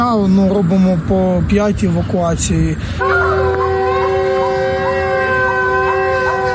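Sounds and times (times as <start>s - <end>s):
speech: 0.1s - 3.6s
air raid alert siren wailing: 3.0s - 6.5s.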